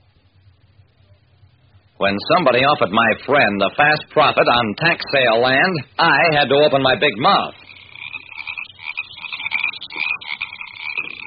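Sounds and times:
chorus of frogs croaking in a swamp: 1.7 - 11.2
speech: 2.0 - 7.6.

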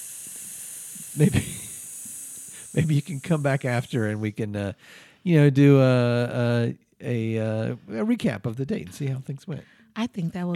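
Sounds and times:
snake hissing: 0.0 - 4.4
speech: 1.2 - 1.6, 2.8 - 10.5.

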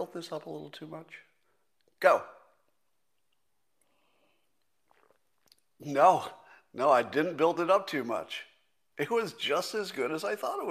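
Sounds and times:
speech: 0.1 - 1.3, 2.0 - 2.4, 5.8 - 10.6
swallowing: 3.2 - 5.8
person sipping a drink: 3.3 - 5.8.

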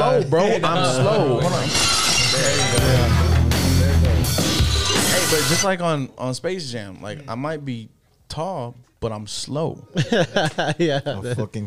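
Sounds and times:
speech: 0.2 - 3.3, 5.3 - 11.6
glass shattering: 1.4 - 3.4, 4.3 - 5.7
tinkling glass shards: 1.5 - 3.1, 4.5 - 5.7
laughter: 10.0 - 11.6.

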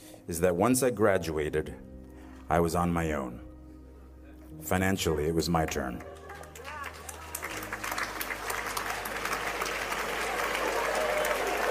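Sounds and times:
speech: 0.3 - 1.9, 2.5 - 3.5, 4.6 - 6.2
audience of parents applauding: 5.7 - 11.6.

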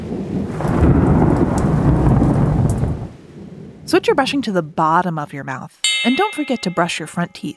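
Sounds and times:
deep rolling thunder: 0.0 - 3.9
speech: 3.9 - 7.5.

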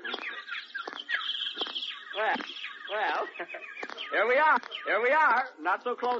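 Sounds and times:
woodpecker calling at a zoo: 0.0 - 6.1
speech: 2.2 - 2.5, 3.3 - 6.1
laughter: 2.9 - 4.2.

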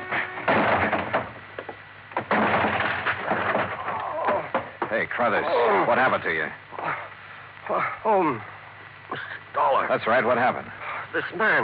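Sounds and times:
heavy banging: 0.0 - 1.4, 2.1 - 5.0
splintering crashes: 0.0 - 1.4, 2.1 - 5.0
locked office door being forced open: 0.1 - 1.4, 2.1 - 5.0
speech: 4.9 - 6.6, 7.7 - 8.5, 9.1 - 11.6.

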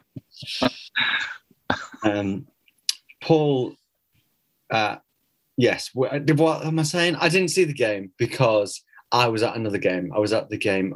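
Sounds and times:
man coughing harshly during a medical examination: 0.4 - 2.3
speech: 2.0 - 2.5, 3.3 - 3.8, 4.7 - 5.0, 5.6 - 10.9.

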